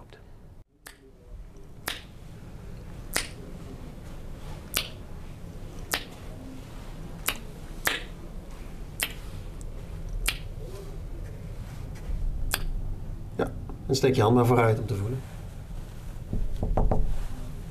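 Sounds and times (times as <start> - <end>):
low hum: 0.0 - 17.7
echolocation tongue clicks while walking toward a door: 3.1 - 3.4, 4.7 - 5.0, 7.2 - 8.1, 9.0 - 9.2, 10.1 - 10.5, 12.5 - 12.7
speech: 13.9 - 15.3.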